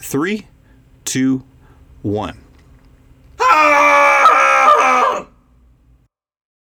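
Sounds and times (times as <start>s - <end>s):
speech: 0.1s - 2.4s
several people screaming together: 3.4s - 5.3s.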